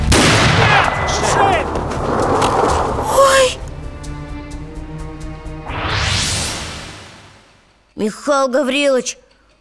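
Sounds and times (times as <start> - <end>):
single loud pistol shot with decay: 0.1 - 3.8
speech: 8.0 - 9.2.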